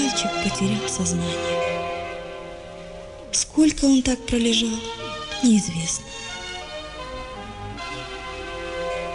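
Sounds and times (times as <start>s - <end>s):
speech: 0.1s - 1.9s, 3.3s - 6.3s
distant church bells ringing: 0.5s - 3.1s, 7.8s - 9.1s.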